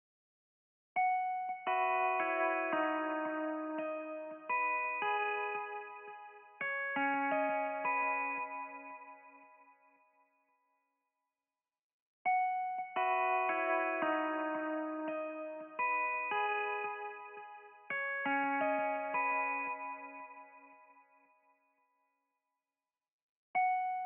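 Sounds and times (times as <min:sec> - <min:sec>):
RnB guitar melody loop in C sharp minor at 85 BPM: 0:01.3 - 0:09.3, 0:12.5 - 0:20.6.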